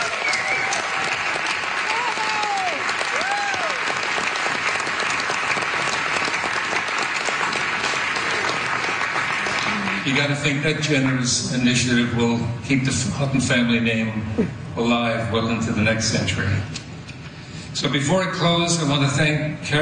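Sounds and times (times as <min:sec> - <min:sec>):
audience cheers and whoops: 0:00.0 - 0:04.1
large audience applause: 0:00.0 - 0:10.7
speech: 0:10.1 - 0:16.8, 0:17.8 - 0:19.8.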